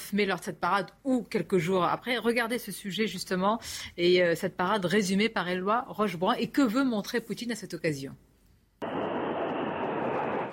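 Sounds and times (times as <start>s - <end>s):
speech: 0.1s - 8.3s
fighter jet engines roaring overhead: 8.8s - 10.5s.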